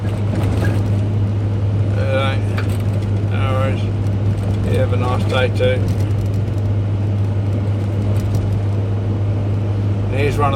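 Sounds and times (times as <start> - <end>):
steady road rumble: 0.0 - 10.5
speech: 5.3 - 6.1, 10.4 - 10.5.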